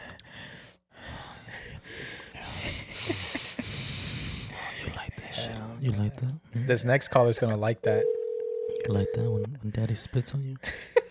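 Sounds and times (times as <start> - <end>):
heavy breathing into a microphone: 0.0 - 5.0
speech: 5.8 - 8.2, 8.8 - 10.9.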